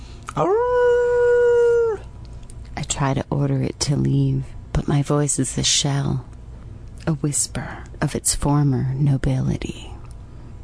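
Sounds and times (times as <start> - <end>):
stray hellhound howling: 0.3 - 2.1
speech: 0.4 - 0.8, 3.0 - 6.4, 7.1 - 9.9.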